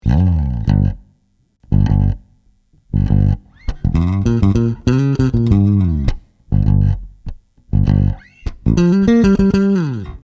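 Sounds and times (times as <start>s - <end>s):
intro bass: 0.0s - 10.2s.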